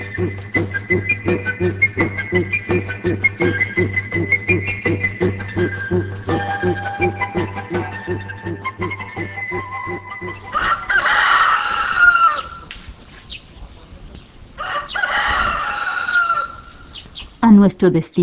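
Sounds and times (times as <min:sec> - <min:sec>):
steady low rhythmic pulsing: 0:00.0 - 0:11.4
rooster crowing: 0:07.9 - 0:12.7, 0:14.6 - 0:16.9
speech: 0:17.8 - 0:18.2.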